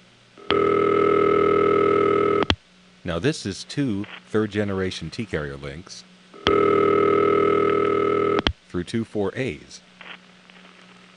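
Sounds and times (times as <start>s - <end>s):
telephone ringtone down a phone line through T-Carrier links: 0.5s - 2.4s, 6.5s - 8.4s
speech: 3.1s - 6.6s, 8.7s - 9.9s.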